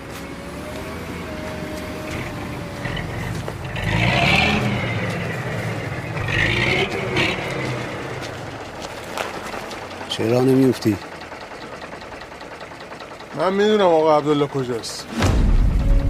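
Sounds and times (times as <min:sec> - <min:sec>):
heavy truck engine revving outside a coal mine: 0:00.0 - 0:16.0
mechanical clatter: 0:05.8 - 0:15.8
speech: 0:10.2 - 0:11.1, 0:13.4 - 0:15.2.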